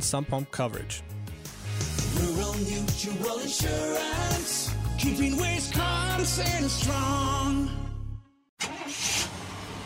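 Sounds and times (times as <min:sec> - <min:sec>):
speech: 0:00.0 - 0:01.2, 0:02.2 - 0:07.9
truck engine starting and revving as it pulls away: 0:08.6 - 0:09.8.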